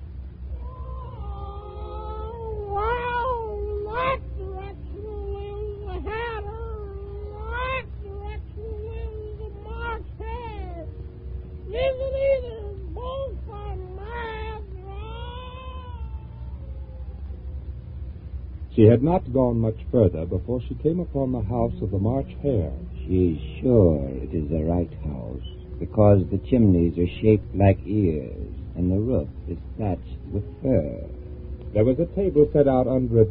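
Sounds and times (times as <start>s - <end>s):
steady low hum: 0.0s - 33.2s
cat meowing and caterwauling: 0.5s - 11.0s, 11.6s - 17.4s
speech: 18.8s - 33.2s.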